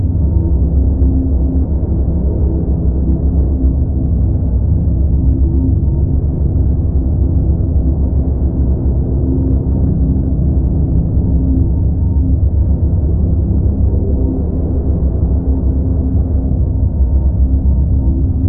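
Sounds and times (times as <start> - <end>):
space station ambience: 0.0 - 18.4.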